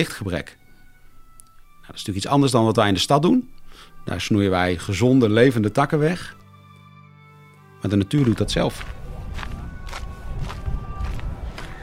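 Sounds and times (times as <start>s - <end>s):
speech: 0.0s - 0.6s, 1.9s - 6.4s, 7.8s - 9.0s
footsteps of people crunching outdoors: 6.0s - 11.8s
low rumbling wind-like background: 8.3s - 11.8s.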